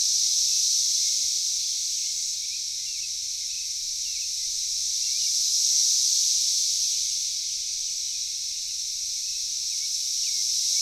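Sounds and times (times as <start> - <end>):
cicada chorus in a backyard in Knoxville, Tennessee, USA: 0.0 - 10.7.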